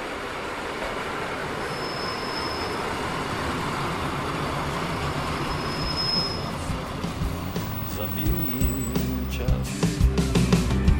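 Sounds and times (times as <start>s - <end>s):
small train rumbling along rails climbing into the Rychlebské Mountains: 0.0s - 10.8s
high train wheel squeals: 1.4s - 9.5s.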